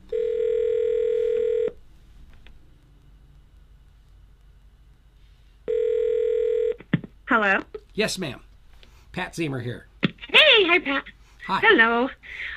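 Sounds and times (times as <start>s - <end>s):
telephone dialing tone: 0.1s - 1.8s, 5.7s - 6.8s
speech: 7.3s - 8.5s, 9.2s - 9.9s, 10.7s - 12.5s.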